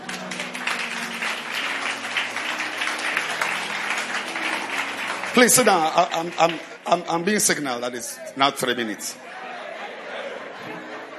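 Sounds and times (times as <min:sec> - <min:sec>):
crowd clapping: 0:00.0 - 0:07.8
speech: 0:05.4 - 0:09.2
laughter: 0:08.2 - 0:11.1.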